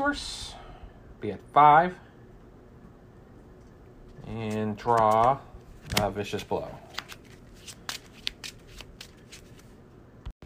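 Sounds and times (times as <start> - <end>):
speech: 0.1 - 0.5, 1.2 - 2.0, 4.2 - 6.8
deck of cards being shuffled: 4.1 - 9.8.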